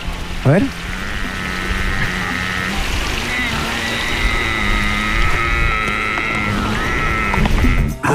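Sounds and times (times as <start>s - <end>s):
speech: 0.4s - 0.8s
huemul deer giving a long nasal bleat: 0.6s - 8.1s.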